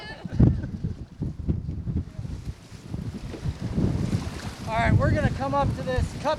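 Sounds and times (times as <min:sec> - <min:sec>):
boat moving at a slow steady pace over open water: 0:00.0 - 0:06.3
faint wash of waves: 0:00.0 - 0:06.3
strong wind buffeting the microphone on open water: 0:00.0 - 0:06.3
speech: 0:04.8 - 0:06.3.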